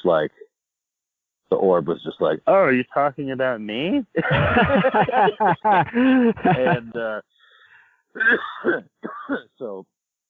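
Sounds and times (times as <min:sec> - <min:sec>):
laughter: 0:00.0 - 0:00.3, 0:01.6 - 0:07.2, 0:08.2 - 0:08.4
speech: 0:00.0 - 0:00.4, 0:01.5 - 0:07.4, 0:08.2 - 0:09.9
harsh coughing fit after smoking cannabis: 0:04.2 - 0:07.2, 0:08.2 - 0:09.8.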